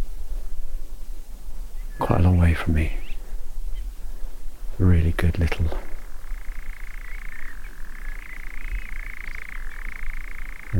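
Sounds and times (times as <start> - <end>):
low background rumble: 0.0 - 10.7
speech: 2.4 - 3.0, 4.8 - 5.9
European nightjar churring at dusk while perched on a twig: 5.8 - 10.7.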